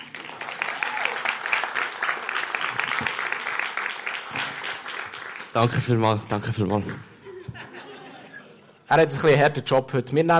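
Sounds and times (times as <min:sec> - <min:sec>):
room full of people applauding: 0:00.0 - 0:05.9
speech: 0:05.6 - 0:07.1, 0:08.9 - 0:10.3
laughter: 0:07.2 - 0:08.8.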